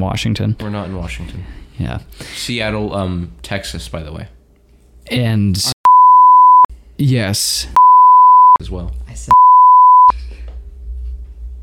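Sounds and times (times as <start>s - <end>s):
speech: 0.0s - 4.4s, 5.1s - 5.7s, 7.0s - 7.8s, 8.6s - 9.4s
censor bleep tone: 5.9s - 6.7s, 7.8s - 8.6s, 9.3s - 10.1s.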